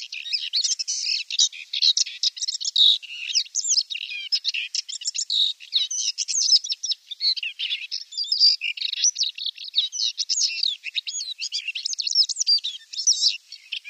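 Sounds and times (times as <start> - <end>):
paddyfield warbler singing a hurried warble: 0.0 - 13.8.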